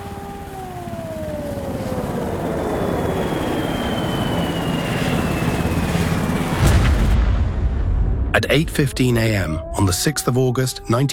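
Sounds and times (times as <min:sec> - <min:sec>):
heavy bomber aircraft droning overhead with a falling whine: 0:00.0 - 0:11.1
deep rumbling blast from an atomic bomb dropped over Hiroshima: 0:06.6 - 0:09.8
speech: 0:08.5 - 0:11.1.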